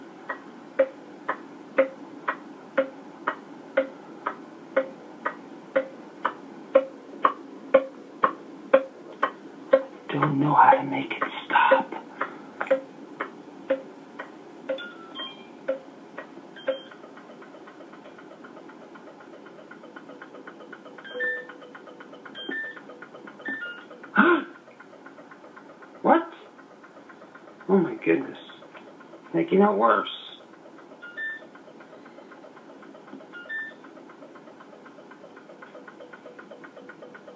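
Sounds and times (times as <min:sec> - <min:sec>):
refrigerator ticking: 0:00.2 - 0:37.3
rough coughing noise: 0:24.1 - 0:24.6
speech: 0:29.6 - 0:30.2.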